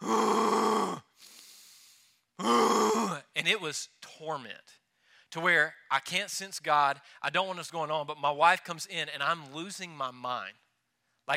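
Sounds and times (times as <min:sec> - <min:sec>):
voice imitating the strained labored exhale of someone barely able to breathe: 0:00.0 - 0:03.2
speech: 0:03.4 - 0:10.6.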